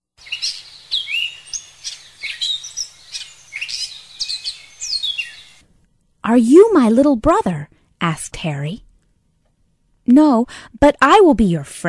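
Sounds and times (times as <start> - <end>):
bird chirping in short whistled calls: 0.2 - 5.6
speech: 6.3 - 8.8, 10.1 - 11.8.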